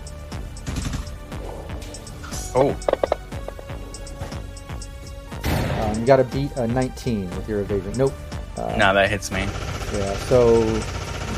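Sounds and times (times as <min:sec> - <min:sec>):
sharp punchy sci-fi gunshots with downward zaps fired by a drone: 0:00.6 - 0:01.2
speech: 0:02.6 - 0:03.0, 0:06.0 - 0:11.0.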